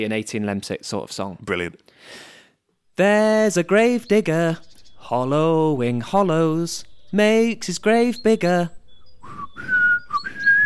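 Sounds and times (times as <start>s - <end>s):
speech: 0.0s - 2.3s, 3.0s - 8.8s
person whistling a tune: 9.1s - 10.6s.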